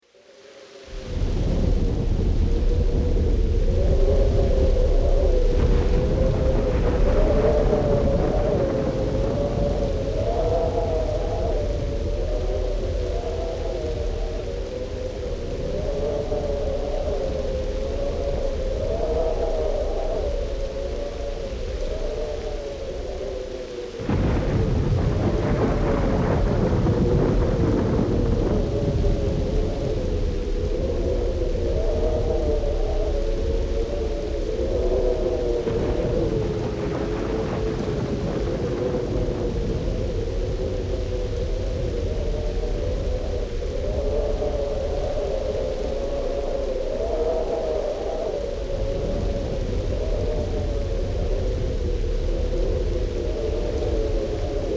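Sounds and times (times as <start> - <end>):
heavy wind: 0.0 - 54.7
thunderstorm: 0.6 - 54.7.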